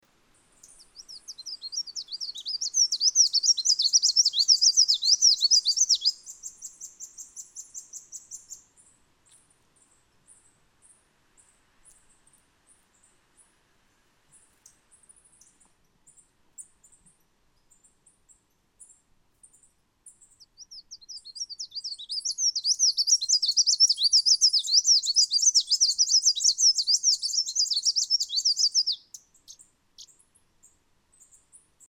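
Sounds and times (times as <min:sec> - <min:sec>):
collared whitestart: 0:00.5 - 0:08.9, 0:17.7 - 0:31.6.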